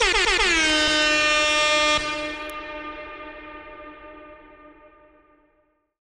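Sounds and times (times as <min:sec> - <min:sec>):
designed air horn: 0:00.0 - 0:05.6.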